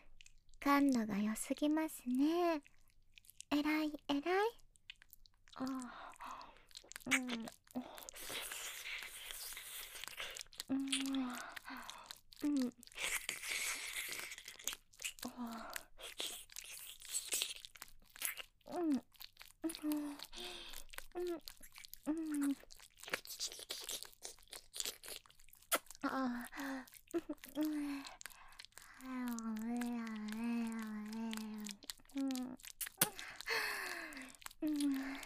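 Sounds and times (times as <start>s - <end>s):
wet mouth sounds of ear licking and smacking: 0.0s - 35.2s
speech: 0.7s - 2.7s, 3.5s - 4.6s, 5.6s - 6.0s, 7.0s - 8.4s, 12.4s - 13.1s
soft breathy vocal murmurs: 5.6s - 17.8s, 18.7s - 24.2s, 25.9s - 35.2s.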